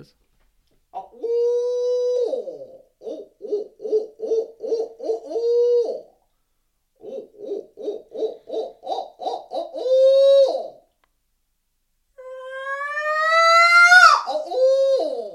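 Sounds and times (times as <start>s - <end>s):
speech: 0.0s - 0.2s
person imitating owl hoots while hunting: 1.0s - 6.2s, 7.0s - 10.8s, 12.2s - 15.3s
loud rising shrill scream: 12.3s - 14.4s.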